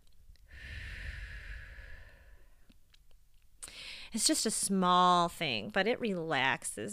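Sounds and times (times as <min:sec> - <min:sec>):
deep breath in and out: 0:00.4 - 0:02.7, 0:03.7 - 0:04.2
speech: 0:04.1 - 0:06.9.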